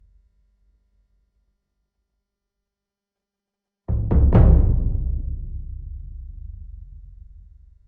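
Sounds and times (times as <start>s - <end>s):
epic drum: 3.9s - 7.8s.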